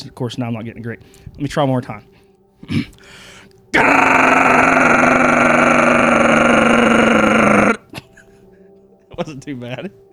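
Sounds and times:
speech: 0.0s - 4.8s, 9.3s - 10.0s
voice imitating a semi-truck jake brake: 3.8s - 7.8s.

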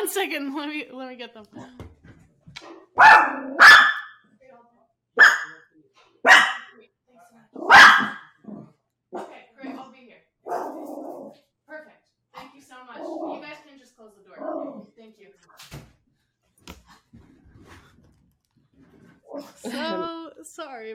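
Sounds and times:
speech: 0.0s - 1.8s, 19.3s - 20.9s
Chihuahua pit bull mix dog barking: 2.6s - 4.2s, 5.2s - 6.8s, 7.6s - 8.4s, 9.1s - 9.8s, 10.4s - 11.4s.

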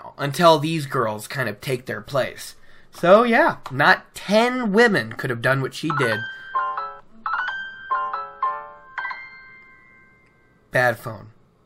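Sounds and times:
speech: 0.2s - 6.4s, 10.8s - 11.4s
phone ringtone melody: 5.9s - 10.6s.

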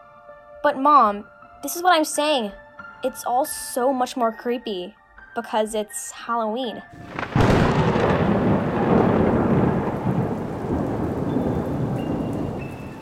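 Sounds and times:
speech: 0.6s - 7.2s
steady pouring rain of a heavy storm at night: 6.9s - 13.0s
thunder crack and deep rumble of a heavy storm at night: 7.0s - 13.0s.

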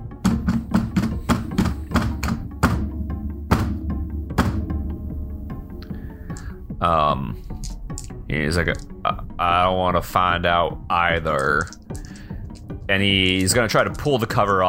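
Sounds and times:
pounding on a door: 0.2s - 4.8s
low droning background: 1.1s - 14.6s
speech: 6.8s - 7.5s, 8.3s - 11.8s, 12.9s - 14.6s.

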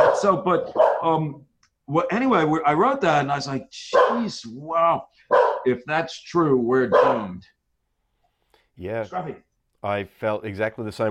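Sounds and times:
dog barking: 0.0s - 1.3s, 3.9s - 4.4s, 5.2s - 5.8s, 6.8s - 7.5s
speech: 0.2s - 7.6s, 8.8s - 11.0s.

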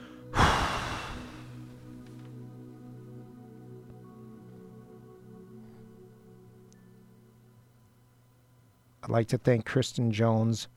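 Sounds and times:
long breathy exhale after a deep breath during a guided stretch: 0.0s - 1.7s
soft steady drone: 0.0s - 9.0s
speech: 9.1s - 10.7s.

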